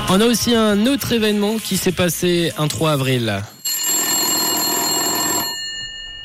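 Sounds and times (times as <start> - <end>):
speech: 0.1 - 3.5
telephone ringing: 3.5 - 6.2.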